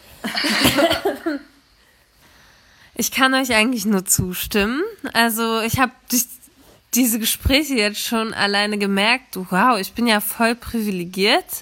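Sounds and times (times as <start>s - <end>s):
person coughing: 0.3s - 1.4s
speech: 3.0s - 11.6s.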